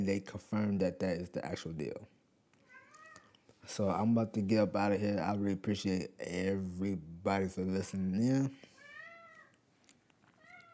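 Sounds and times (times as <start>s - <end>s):
speech: 0.0s - 2.2s, 3.6s - 8.7s
low hiss: 0.0s - 10.7s
pet cat meowing: 2.6s - 3.3s, 8.8s - 9.6s, 10.4s - 10.7s.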